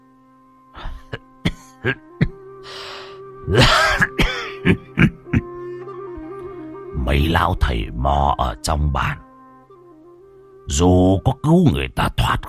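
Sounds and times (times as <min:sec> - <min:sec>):
old man coughing hoarsely in a rock cave: 0:00.8 - 0:02.4, 0:03.5 - 0:05.5
speech: 0:01.8 - 0:02.1, 0:03.5 - 0:04.0, 0:07.1 - 0:09.2, 0:10.7 - 0:12.4.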